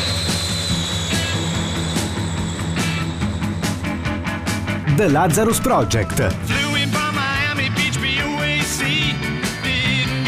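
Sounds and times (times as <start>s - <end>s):
jet airplane roar with a high whine: 0.0s - 4.9s
rock music with a driving drum beat: 0.0s - 10.2s
speech: 5.0s - 6.6s.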